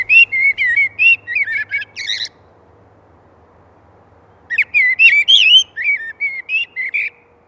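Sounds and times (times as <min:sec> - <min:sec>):
blackbird singing fluting whistled phrases: 0:00.0 - 0:02.4, 0:04.5 - 0:07.2.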